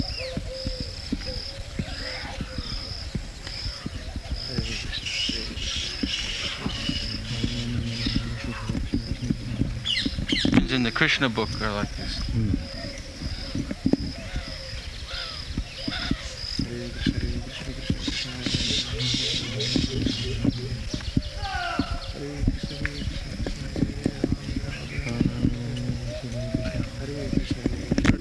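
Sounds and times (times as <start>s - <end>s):
colony of baya weaver birds chattering and chirping: 0.0s - 28.1s
steady clopping: 0.0s - 28.1s
speech: 10.7s - 12.6s.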